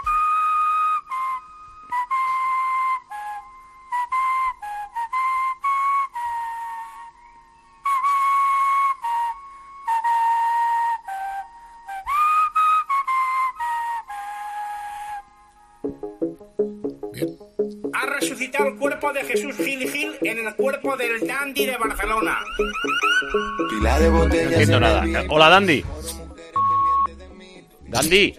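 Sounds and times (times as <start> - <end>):
person whistling a melodic tune: 0.0 - 15.3, 18.0 - 27.3
speech: 18.6 - 26.2, 28.0 - 28.3.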